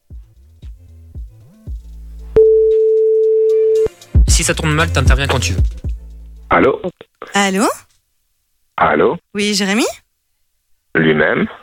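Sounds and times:
loud steady sustained telephone tone: 2.4 - 3.9
speech: 4.4 - 5.9, 6.5 - 7.8, 8.8 - 10.0, 11.0 - 11.6.

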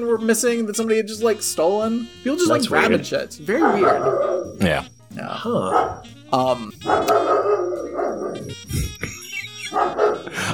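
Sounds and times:
speech: 0.0 - 7.4
dog barking: 3.5 - 4.6, 5.7 - 6.1, 6.8 - 8.6, 9.7 - 10.3.

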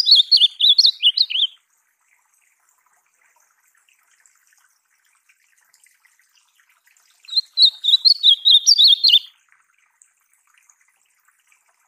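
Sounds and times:
ultramarine grosbeak song: 0.0 - 1.6, 7.2 - 9.3.

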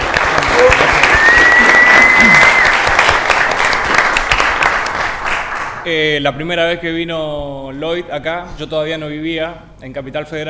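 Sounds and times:
audience applause: 0.0 - 5.8
whistle: 1.1 - 2.8
speech: 5.9 - 10.4.

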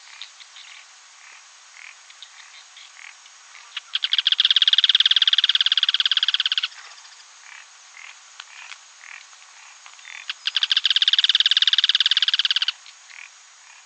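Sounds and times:
faint bird calls: 0.0 - 13.8
yellow-chinned spinetail rattling trills: 3.6 - 7.2, 10.0 - 12.7.

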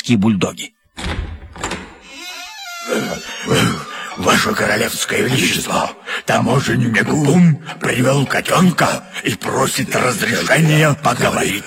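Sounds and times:
speech: 0.1 - 0.8, 2.9 - 11.6
heavy doors of a throne room flung open: 1.0 - 5.1.

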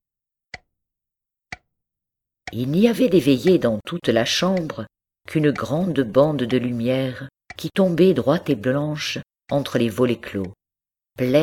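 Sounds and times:
large clock ticking in a quiet house: 2.5 - 8.9
speech: 2.5 - 10.6, 11.2 - 11.4.

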